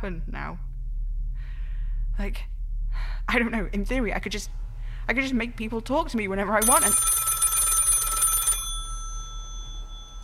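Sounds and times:
speech: 0:00.0 - 0:00.7, 0:02.2 - 0:07.2
low hum: 0:00.0 - 0:10.2
telephone bell ringing: 0:06.6 - 0:10.2.

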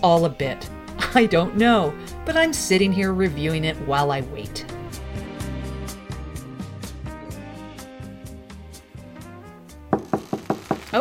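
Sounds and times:
speech: 0:00.0 - 0:04.7
steady music: 0:00.0 - 0:10.2
knuckles knocking on a door: 0:09.9 - 0:10.8.

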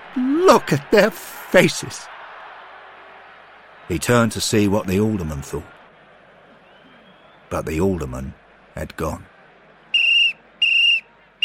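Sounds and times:
speech: 0:00.2 - 0:02.1, 0:03.9 - 0:05.8, 0:07.5 - 0:09.3
referee's final whistle blowing at a football match: 0:10.0 - 0:11.4.

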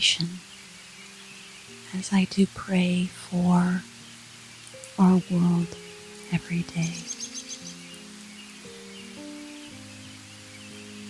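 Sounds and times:
speech: 0:00.0 - 0:00.5, 0:01.9 - 0:03.9, 0:05.0 - 0:07.1
heavy rain pouring down: 0:00.0 - 0:11.0
soft sustained musical tones: 0:00.0 - 0:11.0.

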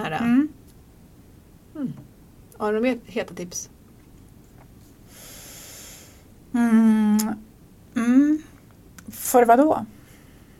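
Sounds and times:
speech: 0:02.6 - 0:03.8, 0:06.5 - 0:08.5, 0:09.1 - 0:10.0
forceful nasal breath in a breathing exercise: 0:05.0 - 0:06.3.

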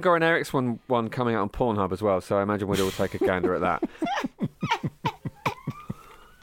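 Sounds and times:
speech: 0:00.0 - 0:05.0
person laughing close to the microphone: 0:02.8 - 0:06.3
police siren passing outside: 0:05.5 - 0:06.4.

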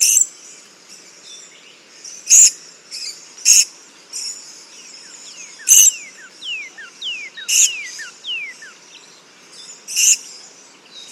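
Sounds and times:
Purple-crowned Lorikeet shrill high screeches in the Stirling Range, Western Australia: 0:05.5 - 0:08.8, 0:09.9 - 0:10.2.

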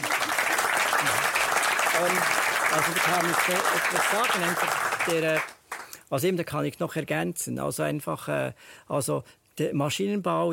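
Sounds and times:
audience applause: 0:00.0 - 0:05.9
speech: 0:02.0 - 0:10.5.

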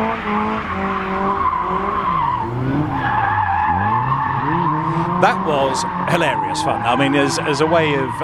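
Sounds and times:
car engine roaring: 0:00.0 - 0:08.2
car tyres squealing while drifting at a brand event: 0:01.4 - 0:08.2
speech: 0:05.2 - 0:08.2.

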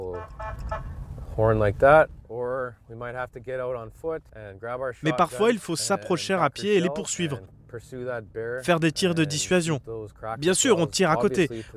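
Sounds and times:
vehicle horn honking to scare off a bear in a village: 0:00.0 - 0:01.0
speech: 0:00.0 - 0:11.7.

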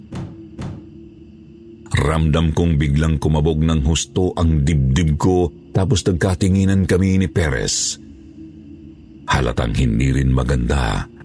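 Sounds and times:
office door rattling as if forced open: 0:00.0 - 0:01.1
speech: 0:02.0 - 0:08.1, 0:09.3 - 0:11.1.

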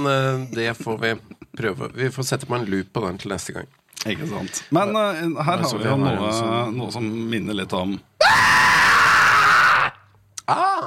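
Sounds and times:
speech: 0:00.0 - 0:08.5
recorded scream used as an emergency signal: 0:08.2 - 0:10.8.

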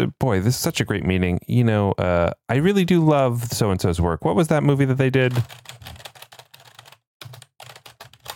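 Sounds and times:
speech: 0:00.0 - 0:06.0
loud clicking of keys on a springy mechanical keyboard: 0:05.3 - 0:08.3.

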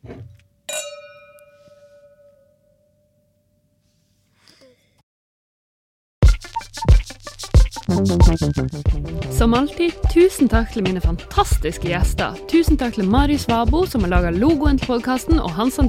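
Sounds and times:
glasses clinking in a toast: 0:00.7 - 0:02.7
speech: 0:08.1 - 0:15.8.

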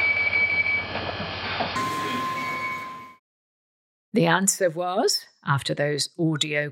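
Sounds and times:
London Underground train departing from the platform at Angel station: 0:00.1 - 0:03.2
speech: 0:04.1 - 0:06.7.

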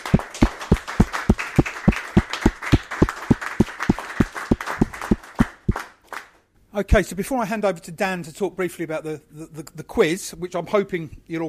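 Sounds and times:
meeting audience giving a round of applause: 0:00.0 - 0:06.4
speech: 0:06.8 - 0:11.4.

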